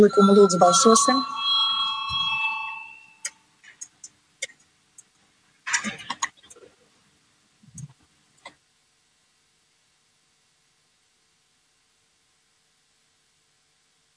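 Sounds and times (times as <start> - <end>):
speech: 0.0 - 1.4
bell rung to call a vote in a legislative session: 0.0 - 3.3.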